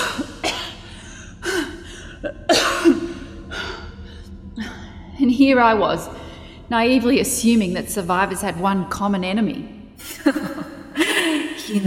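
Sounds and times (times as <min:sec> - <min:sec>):
woman coughing: 0:00.0 - 0:01.0, 0:01.6 - 0:03.3
speech: 0:04.6 - 0:10.5.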